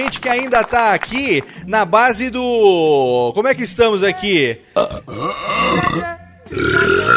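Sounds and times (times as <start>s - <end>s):
speech: 0.1s - 7.1s
loud drawn-out burp: 4.8s - 7.1s
rough belch: 4.8s - 7.1s.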